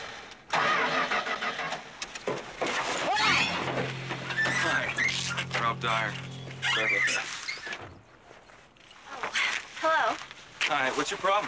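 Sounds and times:
car engine cranking, trying to start: 0.5 - 7.8
speech: 5.8 - 7.4, 10.7 - 11.4.

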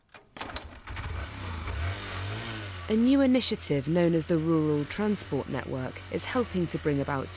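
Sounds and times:
shared midwives' motorbike engine cranking and idling: 0.2 - 7.3
speech: 2.9 - 7.3.

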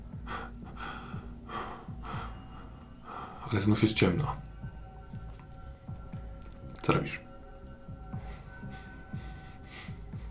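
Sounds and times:
woman breathing heavily with gasping edges: 0.0 - 3.5, 8.0 - 10.2
speech: 3.5 - 4.5, 6.9 - 7.3.

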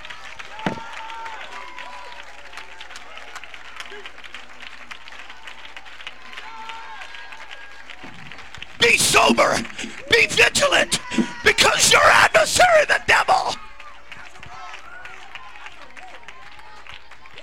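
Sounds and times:
audience clapping hands: 0.0 - 17.4
raised voices: 8.8 - 13.6
speech: 8.9 - 13.5.

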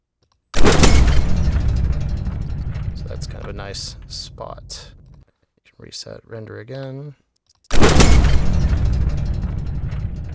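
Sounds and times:
synthesized explosion boom rendered in a 3D simulation: 0.6 - 5.2, 7.7 - 10.3
speech: 3.3 - 5.0, 5.8 - 7.2.

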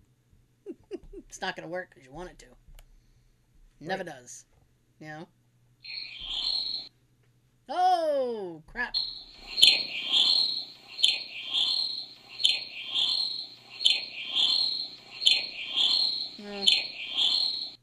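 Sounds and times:
faint low hum: 0.0 - 17.8
speech: 1.3 - 2.6, 3.8 - 6.0, 7.7 - 9.1, 16.4 - 16.9
cricket chirping: 5.8 - 6.9, 8.8 - 17.8.

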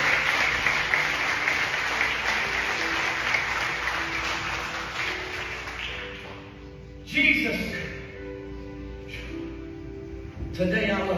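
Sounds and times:
church audience applauding: 0.0 - 6.5
speech: 7.2 - 7.8, 10.6 - 11.1.

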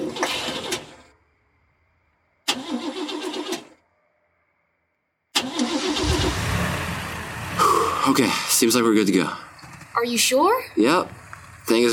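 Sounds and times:
crashed car engine cranking and starting: 0.0 - 1.2, 2.4 - 3.8, 5.3 - 11.9
speech: 8.1 - 11.9.

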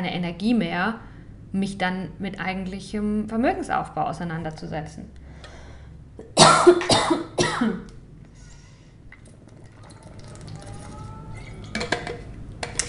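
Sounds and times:
speech: 0.0 - 5.2, 6.2 - 8.0
person coughing: 6.3 - 7.9.

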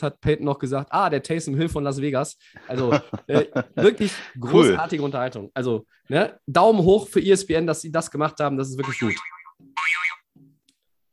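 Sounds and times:
speech: 0.0 - 9.4
laughter: 2.6 - 5.0
brief electronic alarm with bright warbling tone: 8.8 - 10.2.

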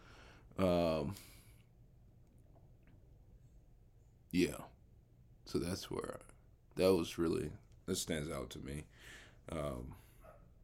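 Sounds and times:
speech: 0.6 - 1.4, 4.3 - 4.8, 5.5 - 10.1
dog barking: 10.2 - 10.6.

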